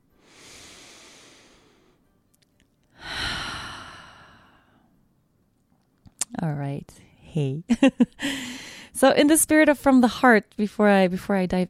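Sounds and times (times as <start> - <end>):
single deep breath: 0.2 - 2.0, 3.0 - 5.0, 8.2 - 8.9
speech: 6.4 - 11.6.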